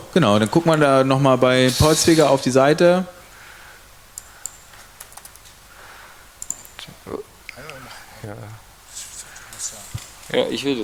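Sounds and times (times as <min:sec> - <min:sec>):
speech: 0:00.1 - 0:03.2, 0:10.3 - 0:10.8
computer mouse clicking: 0:04.2 - 0:05.6, 0:06.4 - 0:07.8
soft voice murmuring: 0:06.8 - 0:10.0.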